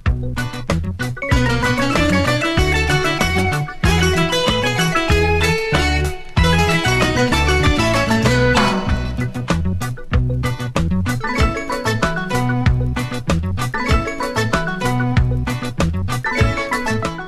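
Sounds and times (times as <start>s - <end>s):
afro ringtone: 0.1s - 9.7s, 10.3s - 17.2s.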